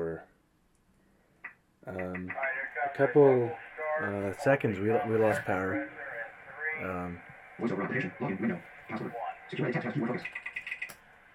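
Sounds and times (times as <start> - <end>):
speech: 1.8 - 6.0, 6.8 - 10.6
voice-like electronic sounds: 1.8 - 10.9
keypad beeps as a password is punched in: 10.2 - 11.0.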